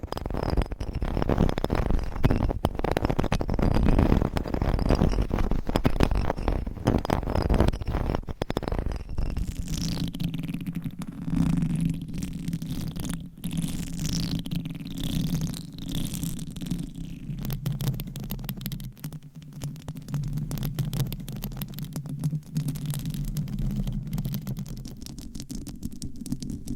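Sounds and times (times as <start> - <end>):
soft rubbing: 0.0 - 9.9
microphone tapping and scratching: 0.0 - 26.7.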